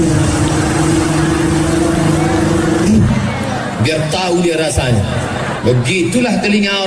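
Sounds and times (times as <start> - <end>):
motorcycle engine with open unmuffled exhaust revving: 0.0 - 3.8
speech: 4.1 - 6.8.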